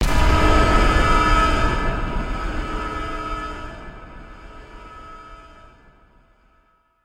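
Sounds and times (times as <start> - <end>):
big objective warning sound: 0.0 - 6.5.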